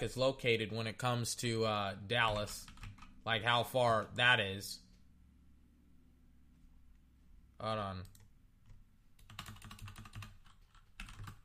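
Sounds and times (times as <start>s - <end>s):
speech: 0.0s - 4.8s, 7.6s - 8.2s
rapid typing on a computer keyboard: 2.6s - 3.2s, 8.0s - 11.4s.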